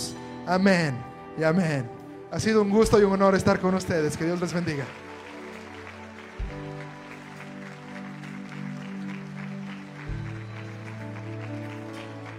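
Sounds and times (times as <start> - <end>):
sustained organ or keyboard chords: 0.0 - 12.3
speech: 0.5 - 5.0
crowd applauding: 4.1 - 12.3.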